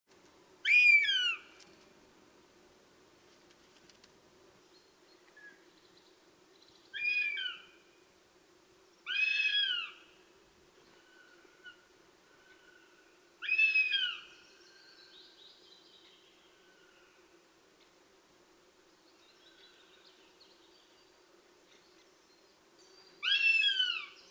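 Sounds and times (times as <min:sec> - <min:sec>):
goshawk begging call: 0:00.6 - 0:01.4, 0:09.1 - 0:10.0, 0:13.4 - 0:14.2, 0:23.2 - 0:24.2.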